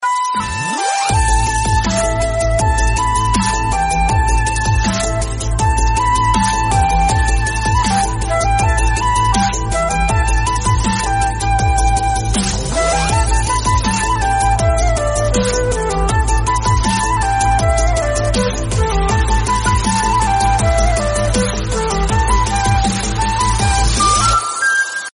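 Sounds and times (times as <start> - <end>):
dubstep music with flute: 0.0 - 25.1.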